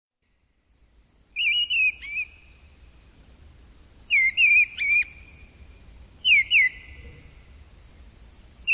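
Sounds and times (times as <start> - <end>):
bird sharp chirp: 0.2 - 8.7
bird whistled calls: 1.1 - 2.5, 3.6 - 8.7.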